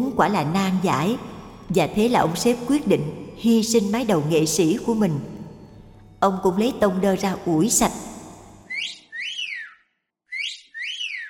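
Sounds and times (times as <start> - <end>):
speech: 0.2 - 5.4, 6.2 - 8.1
bright swooping whistled notes: 8.6 - 11.2.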